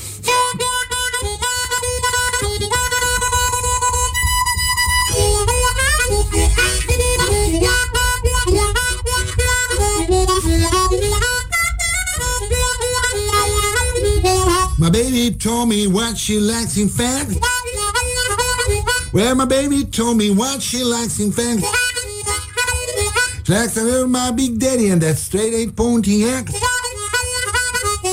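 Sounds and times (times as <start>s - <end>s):
harmonica playing a blues phrase: 0.0s - 28.1s
speech: 15.4s - 17.6s, 19.1s - 21.8s, 23.5s - 26.6s.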